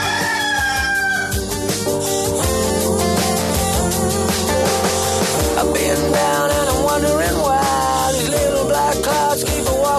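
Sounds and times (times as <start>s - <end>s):
rooster crowing: 0.0s - 1.6s
dense steady musical backing: 0.0s - 9.9s.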